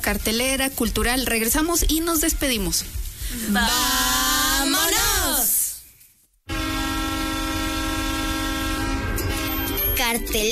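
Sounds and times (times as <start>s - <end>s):
speech: 0.0s - 5.5s, 10.1s - 10.5s
train horn as a radio jingle effect: 6.5s - 10.0s.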